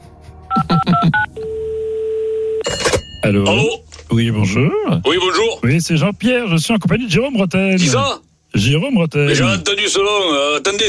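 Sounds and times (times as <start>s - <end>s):
touch-tone beeps of a telephone number being dialed: 0.5s - 2.8s
telephone ringback or line tone: 0.5s - 3.2s
speech: 0.7s - 1.3s, 3.2s - 10.8s.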